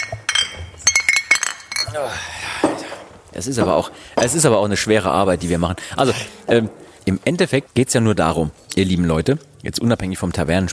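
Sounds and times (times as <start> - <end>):
glasses clinking in a toast: 0.0 - 4.6
speech: 2.0 - 2.5, 3.3 - 10.7.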